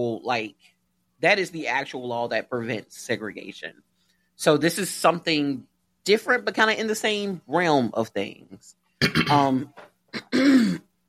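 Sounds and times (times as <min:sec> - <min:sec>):
speech: 0:00.0 - 0:10.9
person clearing an itchy throat: 0:09.0 - 0:10.9.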